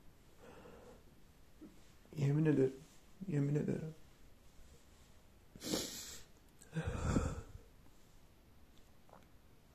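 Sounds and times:
speech: 2.2s - 4.0s
man sniffling and sobbing: 5.6s - 7.7s.

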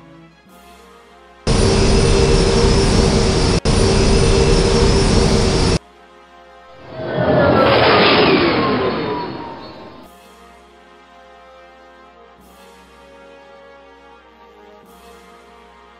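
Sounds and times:
engine surge with rising whine and sweeping whoosh: 1.5s - 5.8s, 6.8s - 10.1s
spaceship engines starting up: 1.5s - 5.8s, 6.8s - 10.1s.

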